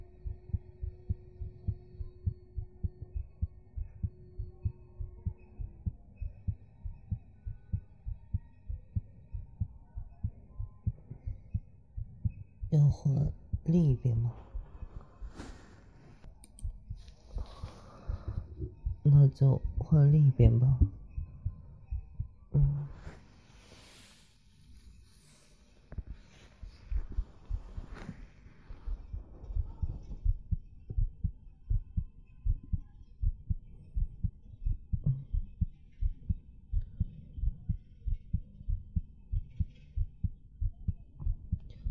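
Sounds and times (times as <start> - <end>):
human heartbeat: 0.0 - 23.3, 25.9 - 41.8
speech: 13.0 - 14.4, 19.4 - 21.0
rustling: 14.3 - 16.3, 22.9 - 30.2.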